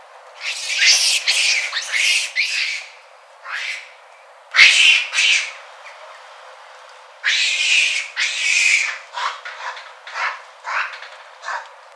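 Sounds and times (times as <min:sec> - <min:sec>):
Macaca fuscata aggressive calls: 0:00.4 - 0:04.0, 0:04.6 - 0:05.6, 0:07.2 - 0:11.7.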